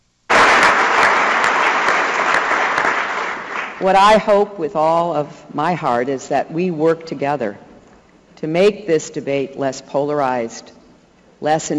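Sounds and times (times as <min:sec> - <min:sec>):
large crowd giving a standing ovation at the U.S. Conference of Mayors: 0:00.3 - 0:04.1
speech: 0:03.8 - 0:07.6, 0:08.4 - 0:10.8, 0:11.4 - 0:11.7.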